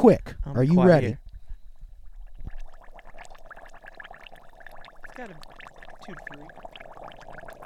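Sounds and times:
speech: 0.0s - 1.2s, 5.2s - 5.5s, 6.1s - 6.6s
thick stew bubbling and popping in a cast iron pot: 1.7s - 7.6s.

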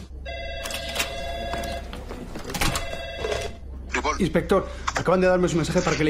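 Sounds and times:
faint hum: 0.0s - 6.0s
telephone ringing with a bright warbling electronic ring: 0.2s - 3.7s
speech: 4.2s - 6.0s.

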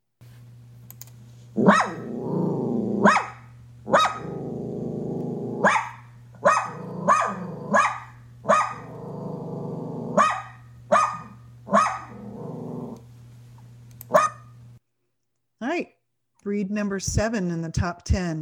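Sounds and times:
steady low hum: 0.2s - 14.8s, 16.5s - 18.4s
dachshund barking with a growly edge: 1.6s - 2.1s, 3.0s - 4.4s, 5.6s - 8.9s, 10.1s - 12.2s, 14.1s - 14.4s
speech: 16.5s - 18.4s.

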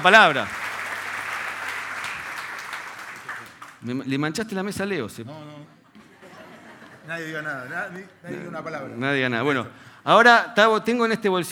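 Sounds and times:
speech: 0.0s - 0.6s, 3.8s - 5.8s, 7.1s - 11.5s
crowd clapping: 0.0s - 3.8s
laughter: 5.9s - 8.7s.

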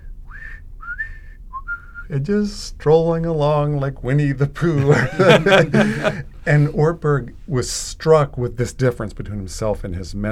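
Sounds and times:
person whistling two clear bright notes: 0.0s - 2.1s
low rumble: 0.0s - 10.2s
speech: 2.1s - 10.2s
laughter: 4.6s - 6.8s.

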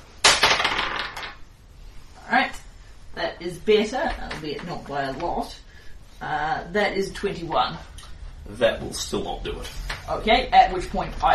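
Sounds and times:
dice rolling on a hard tabletop: 0.2s - 1.4s
speech: 3.4s - 11.3s.

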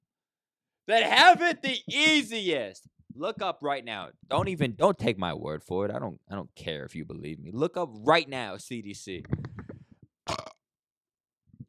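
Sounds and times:
speech: 0.9s - 9.5s
loud burp: 10.3s - 10.6s.

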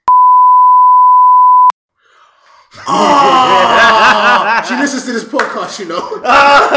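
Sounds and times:
censor bleep tone over a spoken name: 0.0s - 1.7s
speech: 2.8s - 3.5s, 4.6s - 6.7s
laughter: 2.8s - 6.7s.

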